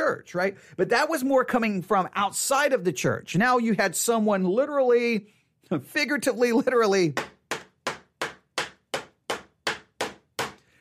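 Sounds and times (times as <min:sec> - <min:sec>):
speech: 0:00.1 - 0:07.3
hammer pounding a nail into a wooden church door: 0:07.2 - 0:10.7.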